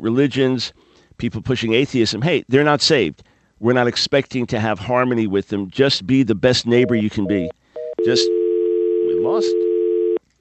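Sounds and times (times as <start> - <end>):
speech: 0.0 - 8.4, 9.2 - 9.6
telephone dial tone after a call drops: 6.9 - 10.2.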